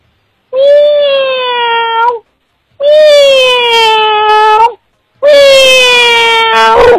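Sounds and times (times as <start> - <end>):
human voice imitating a cat's meow with wailing calls: 0.6 - 2.2, 2.8 - 6.9.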